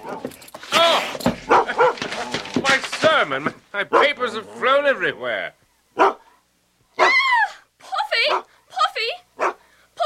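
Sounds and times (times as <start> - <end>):
big dog barking and yelping: 0.0 - 2.6, 3.9 - 4.8, 5.8 - 7.3, 8.2 - 8.6, 9.3 - 9.6
speech: 3.3 - 5.6.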